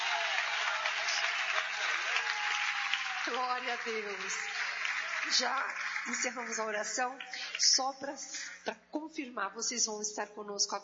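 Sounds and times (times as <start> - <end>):
audience applauding: 0.0 - 7.7
speech: 3.3 - 4.6, 5.2 - 10.8.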